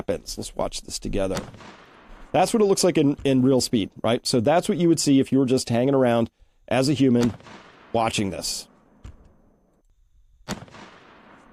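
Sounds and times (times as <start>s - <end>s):
speech: 0.1s - 8.7s, 10.5s - 10.8s
gunshot fired into a block: 1.3s - 3.4s, 7.2s - 9.3s, 10.4s - 11.5s.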